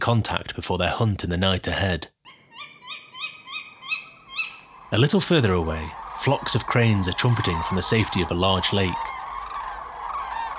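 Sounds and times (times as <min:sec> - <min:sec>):
speech: 0:00.1 - 0:02.7, 0:04.9 - 0:09.1
tawny owl calling: 0:02.2 - 0:10.5.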